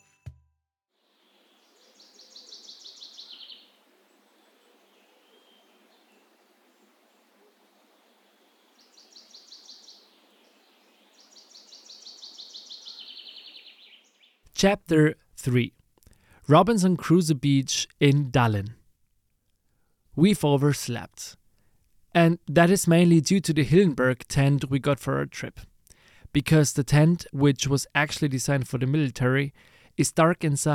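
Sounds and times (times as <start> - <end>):
steady hiss of forest ambience: 1.1 - 14.3
birds singing in the forest: 1.5 - 14.4
speech: 14.6 - 15.8, 16.5 - 18.8, 20.2 - 21.4, 22.1 - 25.7, 26.3 - 30.7.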